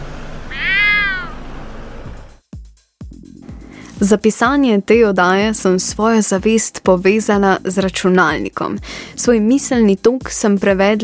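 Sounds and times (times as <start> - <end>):
drawn-out cat meow: 0.5 - 1.4
speech: 4.0 - 11.0.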